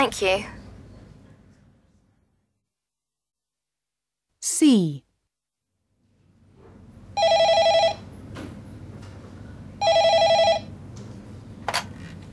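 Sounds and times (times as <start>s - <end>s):
speech: 0.0s - 0.6s, 4.6s - 5.0s
telephone at a health advice phone line ringing with an electronic trill: 7.2s - 8.1s, 9.8s - 10.8s.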